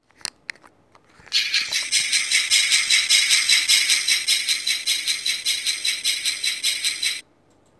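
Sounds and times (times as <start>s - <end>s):
noisy trains: 1.3s - 7.2s.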